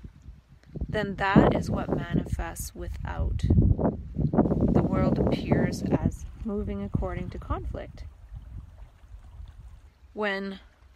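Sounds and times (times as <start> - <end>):
speech: 1.0 - 8.1, 10.2 - 10.7
ocean water lapping and sloshing against rocks: 4.5 - 10.9.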